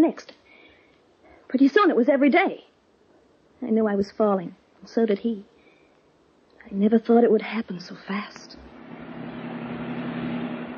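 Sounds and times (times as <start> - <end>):
speech: 0.0 - 0.4, 1.5 - 2.7, 3.6 - 5.5, 6.6 - 8.6
second-hand car engine running: 8.6 - 10.7.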